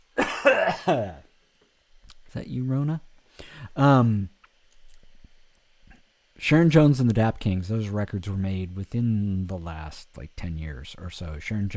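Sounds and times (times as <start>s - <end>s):
harsh coughs: 0.2s - 1.2s
speech: 0.4s - 1.2s, 2.3s - 4.3s, 6.4s - 11.7s.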